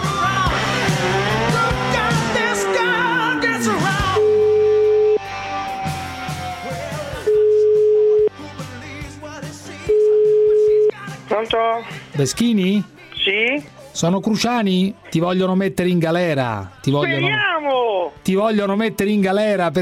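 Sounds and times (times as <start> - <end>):
music: 0.0 - 19.8
telephone line tones while placing a call: 4.2 - 5.2, 7.3 - 8.3, 9.9 - 10.9
speech: 12.2 - 17.5, 18.1 - 19.8.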